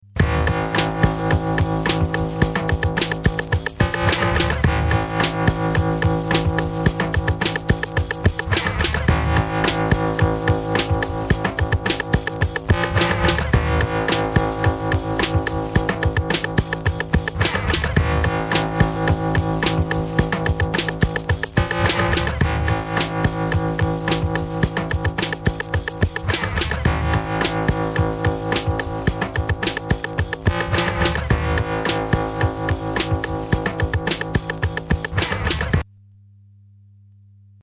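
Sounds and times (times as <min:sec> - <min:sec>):
beat sketch: 0:00.1 - 0:35.9.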